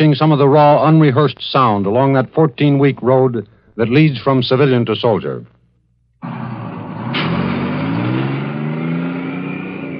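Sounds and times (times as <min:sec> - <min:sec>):
speech: 0:00.0 - 0:05.5
bus engine roar driving along a highway: 0:06.2 - 0:09.9.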